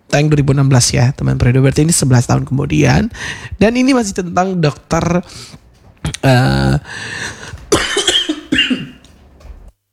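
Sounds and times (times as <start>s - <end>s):
speech: 0.1s - 7.6s
person coughing: 7.6s - 9.1s.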